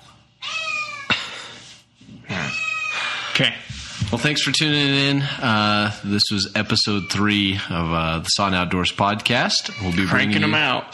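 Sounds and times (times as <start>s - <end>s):
cat meowing: 0.4s - 1.1s, 2.3s - 3.1s, 9.6s - 10.6s
speech: 3.4s - 10.9s.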